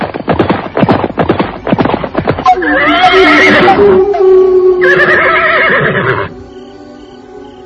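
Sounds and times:
hoofbeats of horses clattering: 0.0 - 4.2
horses whinnying: 2.1 - 6.3.

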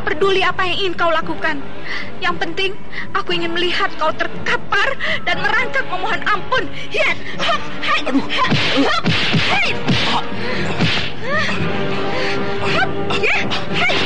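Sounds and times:
speech: 0.0 - 14.0
hard punches striking a body in a brawl: 8.5 - 11.2.

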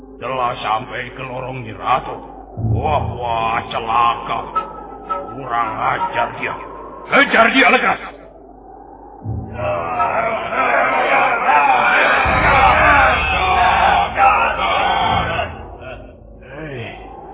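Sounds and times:
low rumble: 0.0 - 7.4, 8.0 - 17.3
speech: 0.2 - 4.6, 5.4 - 8.2, 9.6 - 10.0
large group of men shouting and bellowing together: 9.5 - 16.1.

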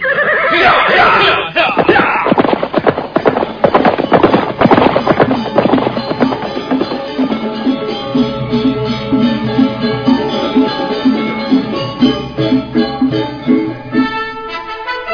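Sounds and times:
horse whinnying: 0.0 - 6.5
galloping horse hooves in a temple courtyard: 0.0 - 14.3.

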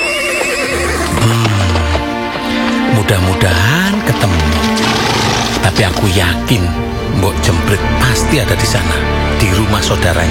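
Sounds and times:
horse neighing: 0.0 - 2.2, 4.2 - 5.9
hooves clopping: 0.0 - 6.5
speech: 5.8 - 10.2.

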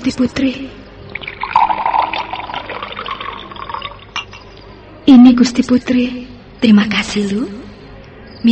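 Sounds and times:
speech: 0.0 - 0.8, 5.1 - 7.6
fruit juice drink being poured into a cup: 1.1 - 4.2.

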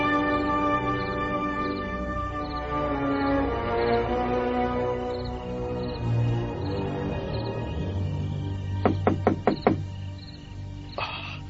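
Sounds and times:
faint insects chirping at night: 0.2 - 11.4
sharp knocks on a door: 8.8 - 10.0.

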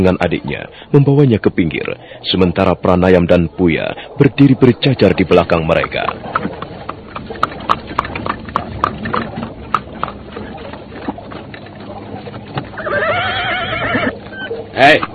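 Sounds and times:
speech: 0.0 - 6.7, 14.8 - 15.1
horse hooves clip-clopping: 0.0 - 15.1
loud horse whinny: 12.7 - 15.0.

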